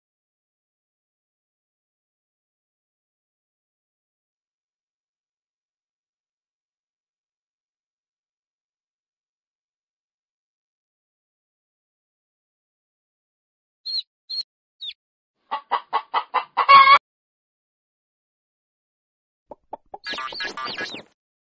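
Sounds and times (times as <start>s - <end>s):
chickens cackling: 13.9s - 17.0s, 20.0s - 21.1s
chickens clucking: 13.9s - 17.0s, 19.5s - 21.1s.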